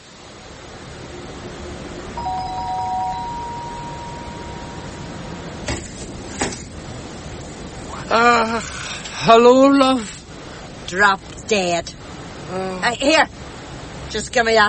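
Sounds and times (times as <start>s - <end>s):
electronic doorbell chime: 2.2s - 5.2s
constant low hum: 2.2s - 5.6s
speech: 8.1s - 10.2s, 10.9s - 13.4s, 14.1s - 14.6s.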